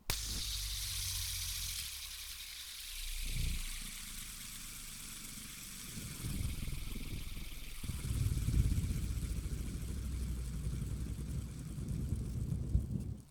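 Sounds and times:
spinner spinning cleanly: 0.0 - 13.3.

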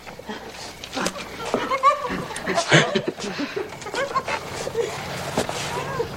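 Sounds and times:
bed shaking laughter: 1.0 - 5.1.

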